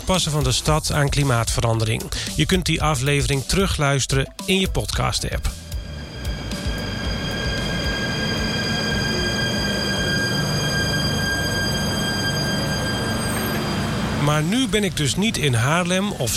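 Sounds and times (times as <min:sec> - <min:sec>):
speech: 0:00.1 - 0:05.6, 0:14.3 - 0:16.3
train rumbling into a station: 0:05.6 - 0:16.3
train wheels and brakes squealing: 0:05.8 - 0:15.5.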